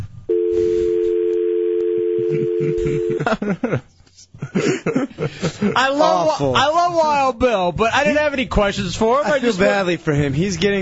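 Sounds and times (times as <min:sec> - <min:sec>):
steady telephone dial tone: 0:00.3 - 0:03.1
laughter: 0:02.3 - 0:06.2
speech: 0:02.3 - 0:10.7.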